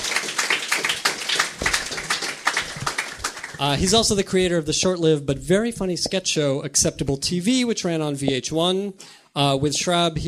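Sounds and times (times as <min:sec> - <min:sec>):
crowd applauding a panelist being introduced: 0:00.0 - 0:04.2
speech: 0:03.6 - 0:10.2.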